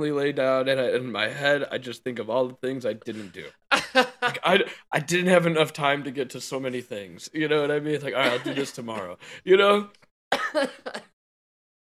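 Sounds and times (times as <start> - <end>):
speech: 0.0 - 11.1
laughter: 3.1 - 4.7, 8.2 - 9.2
harsh coughs: 8.2 - 9.0, 10.3 - 11.1.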